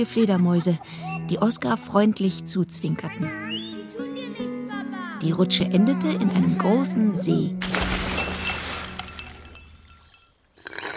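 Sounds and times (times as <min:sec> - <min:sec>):
speech: 0:00.0 - 0:03.6, 0:05.2 - 0:07.8
ice cubes clinking into a glass of lemonade: 0:07.6 - 0:10.3.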